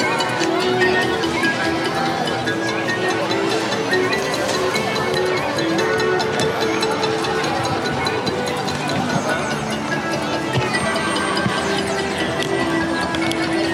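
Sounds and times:
crowd chatter in a busy outdoor area: 0.0s - 13.7s
theme park background music with sustained synth-like tones: 0.0s - 13.7s.

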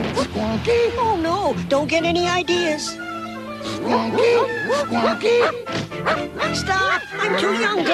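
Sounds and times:
speech: 0.5s - 3.1s, 3.8s - 7.9s
dog barking and yelping: 3.9s - 7.9s.

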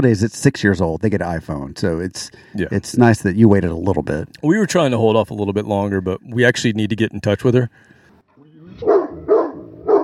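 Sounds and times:
speech: 0.0s - 7.9s, 8.8s - 9.0s
dog barking: 8.8s - 10.0s.

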